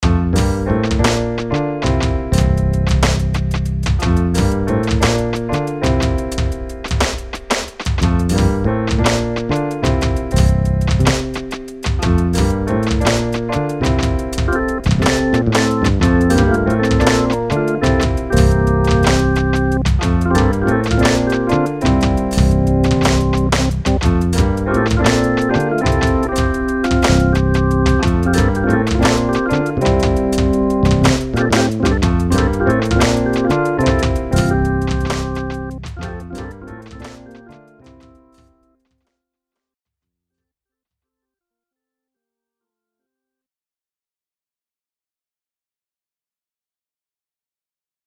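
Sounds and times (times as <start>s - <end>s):
MIDI test tones: 0.0s - 37.6s.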